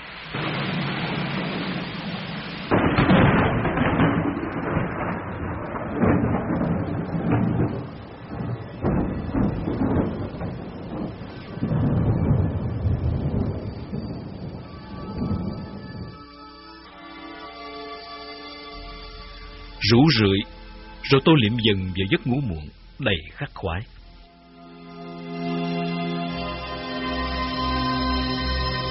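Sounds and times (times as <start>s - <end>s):
wind in a mountain forest: 0.0s - 16.2s
thunder in a mountain forest: 0.0s - 16.3s
pouring rain in a mountain forest: 0.0s - 28.8s
speech: 19.9s - 24.0s.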